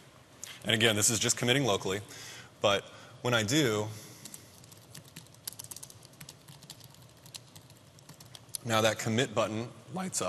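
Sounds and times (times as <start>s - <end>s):
speech: 0.6s - 4.1s, 8.6s - 10.2s
keystrokes on a computer keyboard typing a commit message: 4.2s - 8.6s.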